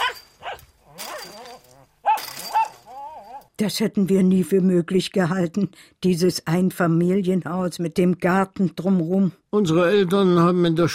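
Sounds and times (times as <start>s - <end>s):
poodle barking at a passer-by from a garden wire fence: 0.0s - 3.4s
speech: 3.6s - 10.9s.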